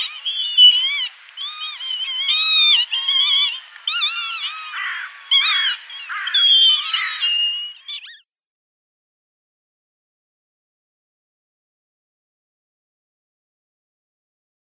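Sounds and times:
northern lapwing flock calls: 0.0 - 8.3.

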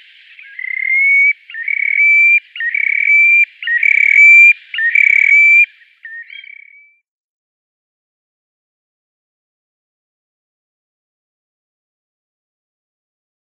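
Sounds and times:
Terek sandpiper display song: 0.0 - 7.0.

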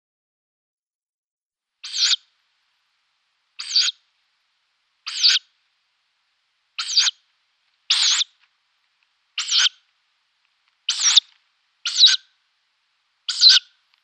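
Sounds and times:
downy tawny owl young giving harsh hissing screech notes: 1.8 - 2.3, 3.6 - 4.0, 5.0 - 5.5, 6.8 - 7.2, 7.9 - 8.4, 9.4 - 9.8, 10.8 - 12.3, 13.3 - 13.8.

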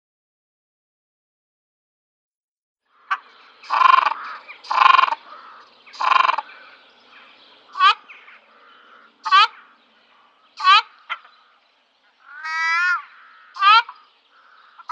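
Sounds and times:
ruddy shelduck honking: 3.1 - 6.5, 7.7 - 8.4, 9.2 - 9.7, 10.6 - 11.3, 12.2 - 14.9.

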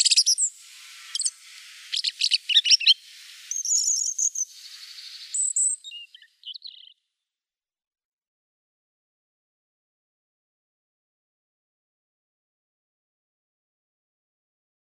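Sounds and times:
European robin song with high thin twittering and sweet whistles: 0.0 - 7.0.

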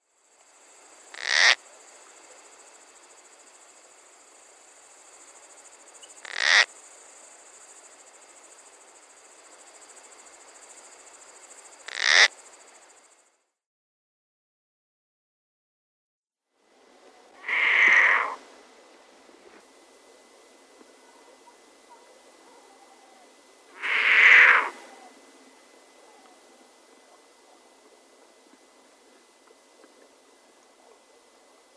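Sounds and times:
marsh owl calls: 1.1 - 1.6, 6.2 - 6.7, 11.9 - 12.3, 17.4 - 18.4, 22.6 - 25.1.

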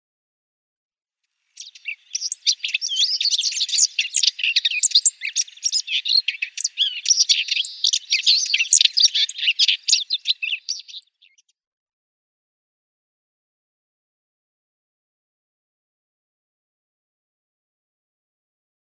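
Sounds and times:
whitethroat subsong: 1.6 - 11.4.

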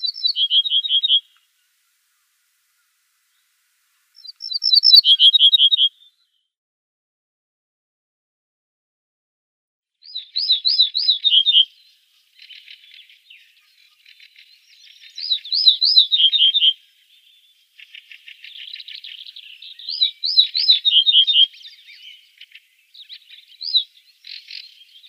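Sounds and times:
Ortolan bunting song: 0.0 - 2.1, 4.2 - 6.5, 10.0 - 25.0.

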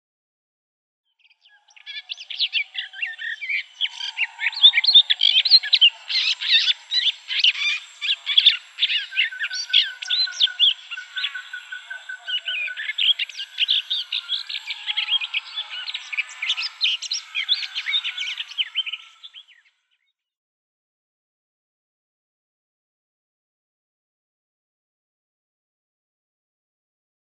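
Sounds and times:
Garden Warbler subsong: 1.4 - 19.7.

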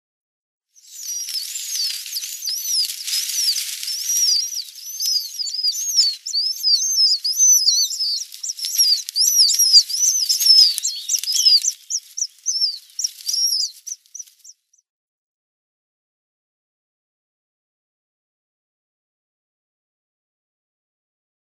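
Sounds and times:
Western Marsh-Harrier nestling calling: 0.8 - 14.6.

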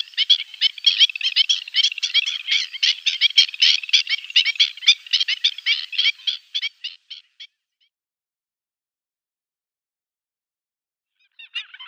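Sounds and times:
Black-winged stilt calling: 0.0 - 7.2.

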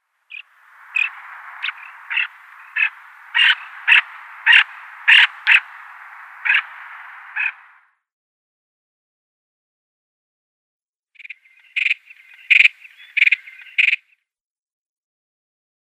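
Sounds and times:
pectoral sandpiper calls: 0.2 - 7.9, 11.2 - 14.2.

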